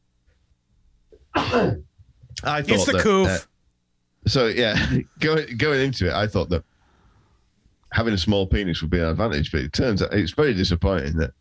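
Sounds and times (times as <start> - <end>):
speech: 1.2 - 3.5, 4.3 - 6.7, 7.9 - 11.3
loud sneeze: 1.3 - 1.8
faint breath: 6.7 - 7.7.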